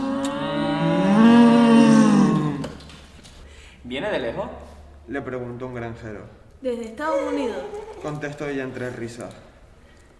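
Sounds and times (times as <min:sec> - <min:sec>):
cow mooing in a pasture: 0:00.0 - 0:02.8
speech: 0:04.2 - 0:09.5.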